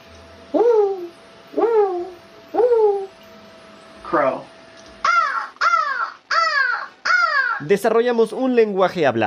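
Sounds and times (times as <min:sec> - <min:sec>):
owl hooting: 0:00.5 - 0:03.2, 0:05.0 - 0:07.7
speech: 0:04.1 - 0:04.5, 0:07.6 - 0:09.2.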